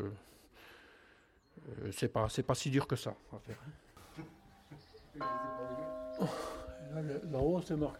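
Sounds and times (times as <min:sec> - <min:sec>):
speech: 0:00.0 - 0:00.7, 0:01.6 - 0:07.9
small church bell ringing: 0:05.2 - 0:07.9.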